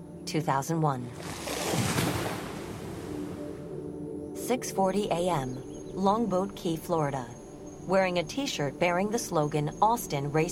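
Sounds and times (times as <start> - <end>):
speech: 0.3 - 1.9, 4.5 - 10.4
gentle waves lapping against a shore: 1.1 - 3.8.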